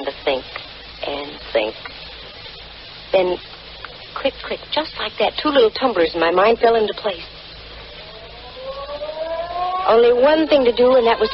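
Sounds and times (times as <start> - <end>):
speech: 0.0 - 2.0, 3.1 - 3.5, 4.2 - 7.3, 9.9 - 11.3
faint hum: 0.0 - 11.3
ferry building siren sounding the hour: 7.8 - 11.3.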